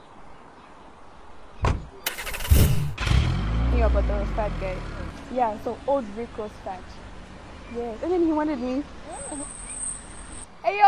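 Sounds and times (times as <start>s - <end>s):
car door shutting: 1.6s - 2.9s
car engine cranking and starting: 2.1s - 3.6s
speech: 3.9s - 7.1s, 7.7s - 9.6s, 10.6s - 10.8s.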